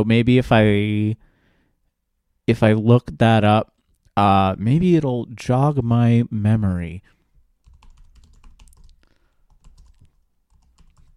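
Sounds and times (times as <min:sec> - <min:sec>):
speech: 0:00.0 - 0:01.3, 0:02.5 - 0:07.2
typing on a computer keyboard: 0:07.6 - 0:11.1.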